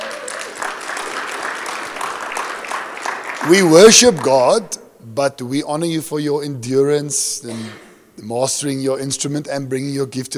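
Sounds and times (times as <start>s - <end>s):
audience applause: 0.0s - 4.4s
speech: 3.4s - 10.3s.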